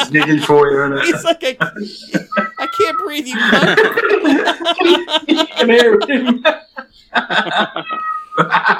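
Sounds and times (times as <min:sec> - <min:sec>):
laughter: 0:00.0 - 0:08.7
speech: 0:00.0 - 0:08.7
frightened cat yowling: 0:07.8 - 0:08.5.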